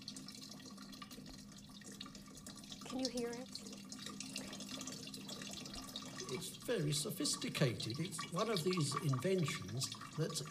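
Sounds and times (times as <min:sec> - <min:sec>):
water flowing in replica ancient water clock: 0:00.0 - 0:10.5
person asking a question: 0:02.9 - 0:03.5
speech: 0:02.9 - 0:03.7, 0:06.3 - 0:10.5.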